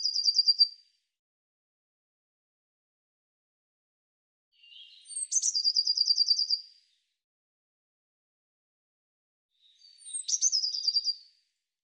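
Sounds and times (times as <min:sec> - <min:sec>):
bird song with a rapid even trill of high notes: 0:00.0 - 0:00.8, 0:04.6 - 0:06.8, 0:09.6 - 0:11.3.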